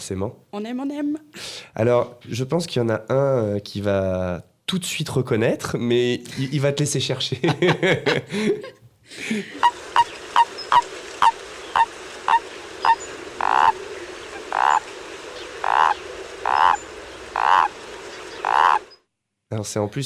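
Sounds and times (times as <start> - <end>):
speech: 0.0 - 9.8, 19.5 - 20.0
soft outdoor background: 0.0 - 20.0
laughter: 7.2 - 9.6
small tree frog croaking: 9.6 - 19.0.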